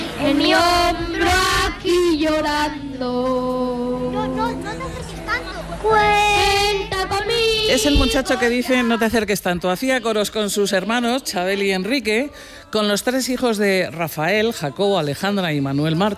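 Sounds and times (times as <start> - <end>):
young child singing a slow melody in an old archive recording: 0.1 - 9.1
speech: 7.0 - 16.1.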